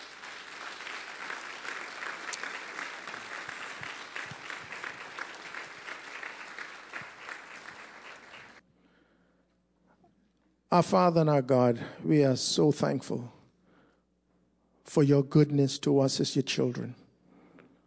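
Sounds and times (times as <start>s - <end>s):
audience applause of many hands clapping: 0.0s - 8.6s
speech: 10.7s - 13.4s, 14.9s - 17.0s.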